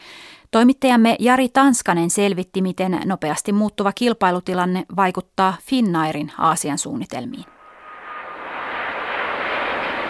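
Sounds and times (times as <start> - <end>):
speech: 0.5 - 7.6
jet engine roar of Airbus superjumbo airliners landing at Dubai airport: 7.5 - 10.0.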